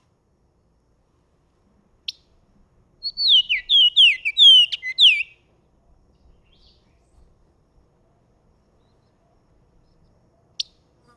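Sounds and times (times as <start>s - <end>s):
Bahama oriole Icterus northropi whistled warbling song: 3.0s - 5.4s, 6.3s - 7.2s.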